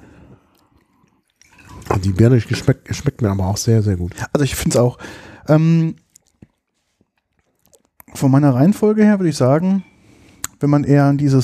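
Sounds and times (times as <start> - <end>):
water sloshing and swirling in a glass being rinsed: 0.7 - 4.0
speech: 2.0 - 6.0, 8.2 - 9.9, 10.6 - 11.4.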